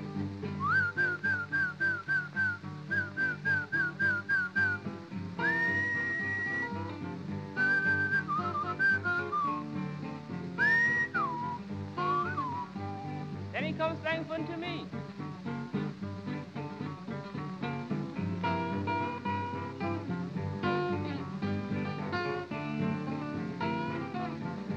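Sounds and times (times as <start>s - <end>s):
steady low musical backing: 0.0s - 24.7s
person whistling to call a horse: 0.6s - 4.8s, 5.4s - 6.8s, 7.6s - 9.6s, 10.6s - 13.2s.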